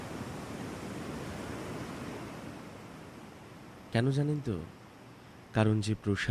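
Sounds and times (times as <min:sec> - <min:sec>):
sea waves: 0:00.0 - 0:03.9
speech: 0:03.9 - 0:04.8, 0:05.5 - 0:06.2.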